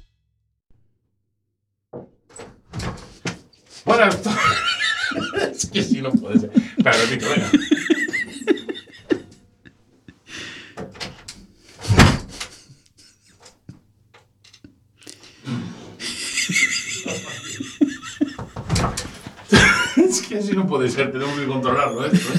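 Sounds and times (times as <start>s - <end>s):
door banged and yanked hard: 2.0s - 9.5s, 10.8s - 12.6s, 16.4s - 20.3s
speech: 3.8s - 4.7s, 5.6s - 7.8s, 20.4s - 22.3s
laughter: 3.8s - 10.7s, 11.8s - 13.4s, 16.0s - 22.3s.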